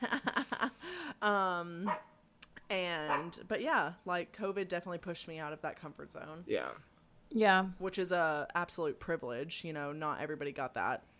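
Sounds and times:
speech: 1.2 - 2.0, 2.7 - 11.1
dog barking: 1.9 - 2.2, 3.1 - 3.4.

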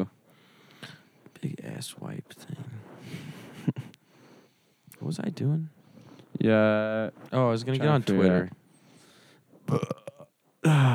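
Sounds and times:
speech: 1.4 - 3.2, 5.0 - 5.8, 6.4 - 8.6, 9.7 - 10.9
person burping: 9.7 - 10.9.

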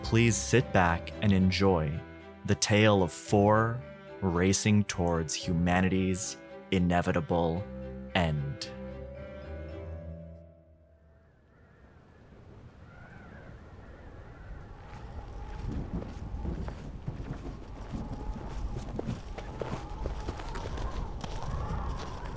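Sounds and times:
speech: 0.1 - 8.8
hollow windy background: 11.0 - 22.3
boot footsteps crunching on a gritty surface: 14.8 - 22.3.

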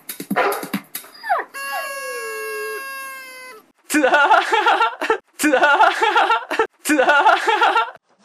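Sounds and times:
dog giving choppy yelps and whiny barks: 0.4 - 3.6
dog giving a long drawn-out rising whine: 1.0 - 3.7
laughter: 3.9 - 8.0.

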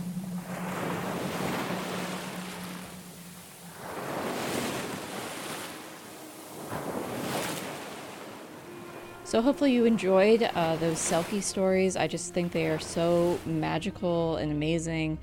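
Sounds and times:
ocean waves breaking on shore: 0.0 - 13.8
speech: 9.3 - 15.2.

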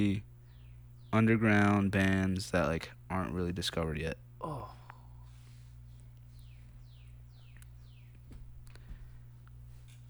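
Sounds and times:
speech: 0.0 - 0.3, 1.1 - 4.8
bird singing descending whistled notes: 0.0 - 2.5, 5.9 - 8.9
constant low electrical hum: 0.0 - 10.0.

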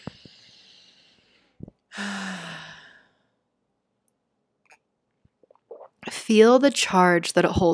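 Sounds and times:
slow deep breath drawn in during a guided breathing exercise: 0.0 - 3.4
speech: 6.3 - 7.7.

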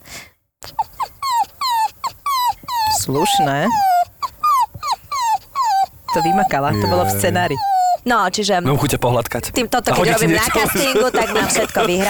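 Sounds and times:
person imitating a whimpering dog: 0.6 - 8.1
speech: 3.1 - 4.0, 6.1 - 12.0
laughter: 6.2 - 7.6, 9.9 - 12.0.

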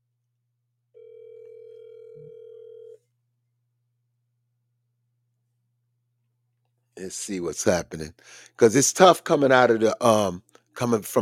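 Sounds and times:
telephone ringback tone of an outgoing call: 1.0 - 3.0
speech: 7.0 - 11.2.

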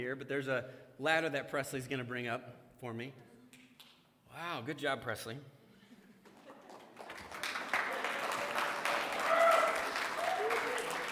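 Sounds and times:
speech: 0.0 - 3.3, 4.3 - 5.6
audience applauding: 6.3 - 11.1
voices calling out and cheering: 8.0 - 11.1.

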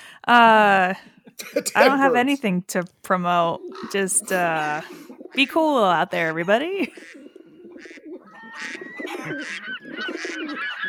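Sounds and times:
speech: 0.2 - 7.2, 8.6 - 10.8
many birds honking cooing and chirping: 3.6 - 10.8.

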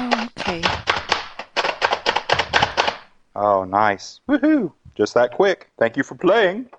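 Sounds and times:
nuts chopped in a dome food chopper: 0.0 - 3.0
speech: 3.4 - 6.7.

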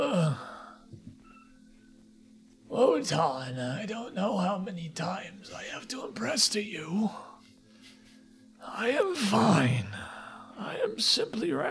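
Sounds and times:
man groaning as he stirs: 0.0 - 0.6, 8.8 - 10.2
speech: 2.8 - 7.3, 8.6 - 11.6.

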